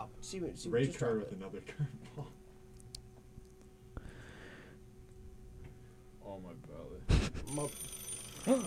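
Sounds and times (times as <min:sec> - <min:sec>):
speech: 0:00.2 - 0:02.4, 0:06.3 - 0:08.6
telephone ringing with incoming call: 0:07.5 - 0:08.6.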